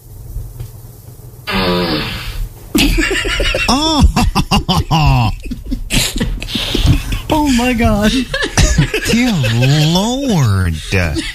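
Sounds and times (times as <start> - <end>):
noisy burst: 1.4 - 11.3
fart sound effect from smart speaker: 1.5 - 2.5
laughter: 2.8 - 11.3
speech: 7.6 - 8.5, 9.1 - 11.3.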